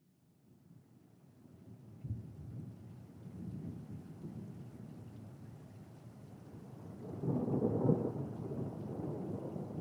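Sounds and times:
steady rain outside an office building: 0:01.6 - 0:09.8
deep rolling thunder outside an office building: 0:07.1 - 0:09.8.

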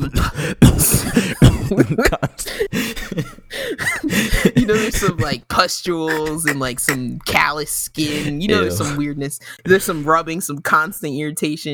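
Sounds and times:
person imitating a wheezy hacking chronic cough: 0:00.0 - 0:02.3, 0:03.0 - 0:05.4, 0:06.1 - 0:07.2, 0:08.2 - 0:09.0
speech: 0:01.7 - 0:03.4, 0:05.0 - 0:11.7
gravelly vocal noises: 0:04.9 - 0:10.2.

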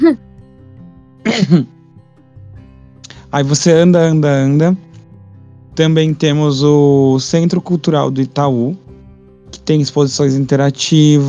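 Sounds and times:
speech: 0:00.0 - 0:00.2, 0:01.4 - 0:01.8, 0:03.3 - 0:04.9, 0:05.8 - 0:08.8, 0:09.6 - 0:11.2
person clearing throat: 0:01.3 - 0:01.7.

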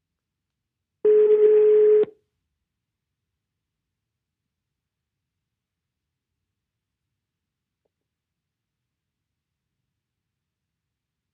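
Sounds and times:
telephone dialing tone on an outgoing call: 0:01.1 - 0:02.1.

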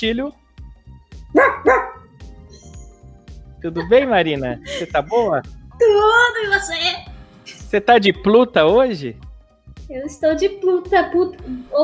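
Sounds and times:
speech: 0:00.0 - 0:00.4, 0:03.6 - 0:07.1, 0:07.7 - 0:09.2, 0:09.9 - 0:11.8
dog barking: 0:01.3 - 0:02.2
laughter: 0:03.6 - 0:05.4.

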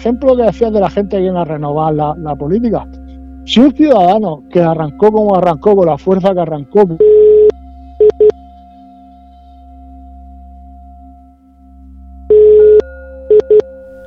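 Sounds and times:
speech: 0:00.0 - 0:07.3
low steady hum: 0:00.0 - 0:14.0
incoming-call beeps over a phone line: 0:07.0 - 0:08.4, 0:12.3 - 0:13.6.

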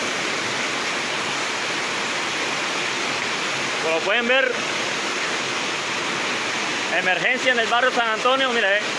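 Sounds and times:
rushing floodwater through a flooded street: 0:00.0 - 0:08.9
speech: 0:03.9 - 0:04.8, 0:06.9 - 0:08.9.

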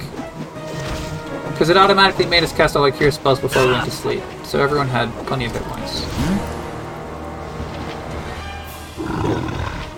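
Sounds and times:
speech: 0:01.6 - 0:06.6
video game dire wolf growling: 0:09.0 - 0:09.9.

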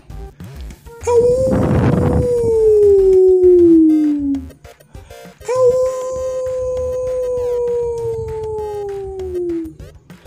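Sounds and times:
long drawn-out howls: 0:01.1 - 0:04.6, 0:05.5 - 0:09.8.

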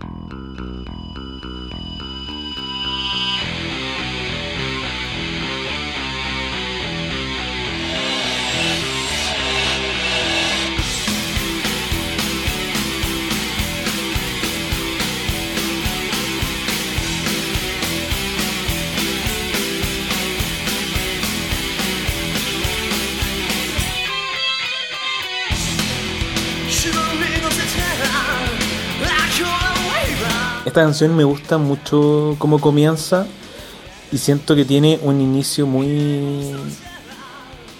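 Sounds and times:
driving punk-style bass line: 0:00.0 - 0:24.3, 0:25.5 - 0:30.7
heavily distorted metal guitar riff: 0:00.0 - 0:31.0
speech: 0:30.8 - 0:33.4, 0:34.1 - 0:36.9.

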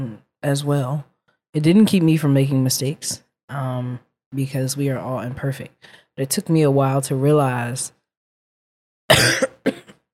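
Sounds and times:
speech: 0:00.0 - 0:08.0
person coughing into a microphone: 0:09.1 - 0:10.1.

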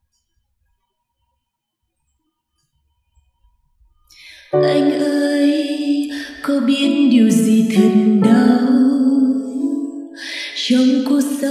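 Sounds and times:
instrumental song intro with sustained chords and bright high layers: 0:04.5 - 0:10.7
speech: 0:06.5 - 0:08.8, 0:10.7 - 0:11.4.

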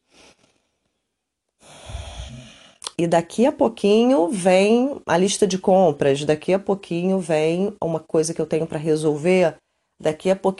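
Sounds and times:
slow breathing in and out: 0:00.0 - 0:02.9
speech: 0:03.0 - 0:10.5.

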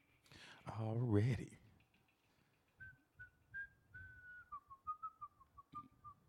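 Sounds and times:
speech: 0:00.6 - 0:01.6
person whistling a short wavering tune: 0:02.8 - 0:06.2.

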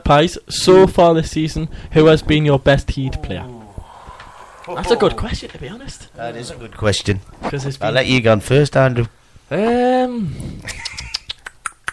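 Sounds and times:
speech: 0:00.1 - 0:03.6, 0:04.7 - 0:10.9
person imitating a woodpecker: 0:03.1 - 0:05.5.

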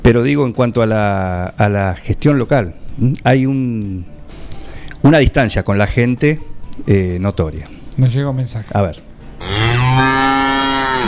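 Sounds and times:
speech: 0:00.1 - 0:04.2, 0:05.0 - 0:10.3
cow mooing: 0:09.4 - 0:11.0.

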